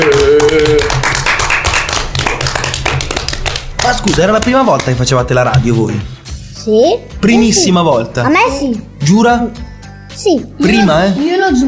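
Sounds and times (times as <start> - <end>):
small group clapping: 0.0 - 5.9
speech: 4.0 - 11.6.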